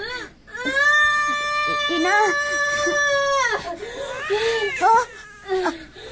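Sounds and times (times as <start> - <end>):
newborn baby crying in thin wavering wails: 0.5 - 5.9.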